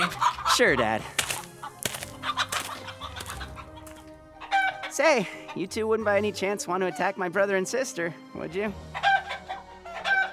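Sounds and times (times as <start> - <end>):
speech: 0.0 - 1.2, 5.0 - 9.0
giant chickens clucking in a lab: 0.0 - 5.9, 8.8 - 10.3.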